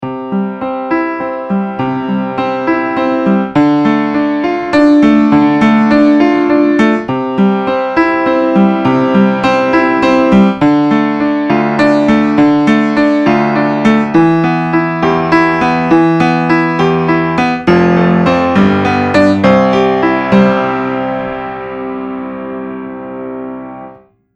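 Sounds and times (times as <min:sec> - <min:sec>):
closed upright piano: 0:00.0 - 0:24.3.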